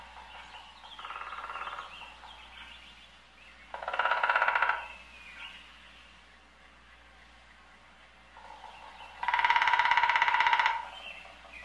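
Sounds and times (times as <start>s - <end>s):
woodpecker drumming: 0.0s - 2.8s, 3.7s - 5.0s, 8.4s - 11.6s.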